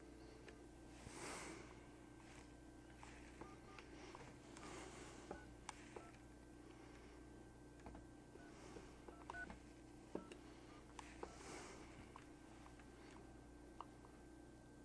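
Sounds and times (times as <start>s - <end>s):
low steady hum: 0.0s - 14.8s
telephone keypad dialing tones: 3.1s - 6.2s, 9.1s - 9.6s.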